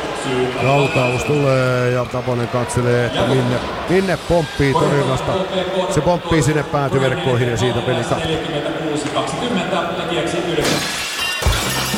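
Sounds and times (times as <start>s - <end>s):
speech: 0.2s - 11.0s
glass shattering: 10.6s - 11.9s.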